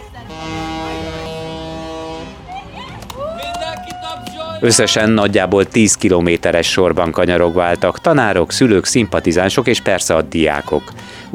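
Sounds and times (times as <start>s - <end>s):
long horn blast: 0.0s - 2.8s
crowd noise outdoors: 0.0s - 11.3s
short honks: 0.2s - 2.7s
speech: 4.6s - 11.3s.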